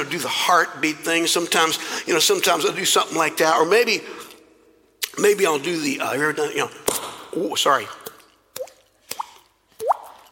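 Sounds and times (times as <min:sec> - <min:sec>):
speech: 0:00.0 - 0:04.3, 0:05.2 - 0:08.0
mouth-made water-drop plops: 0:08.0 - 0:10.3.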